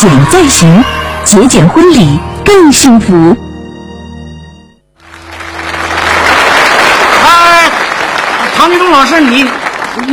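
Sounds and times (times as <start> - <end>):
speech: 0.0 - 3.5, 9.0 - 10.1
crowd applauding: 5.0 - 10.1.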